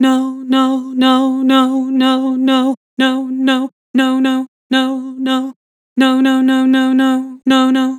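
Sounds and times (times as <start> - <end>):
vocals with vibrato: 0.0 - 7.9.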